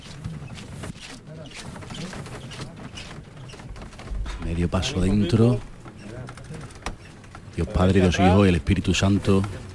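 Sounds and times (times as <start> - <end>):
heavy wood creaking and groaning as a large procession float shifts: 0.0 - 9.7
speech: 4.4 - 5.7, 7.6 - 9.6.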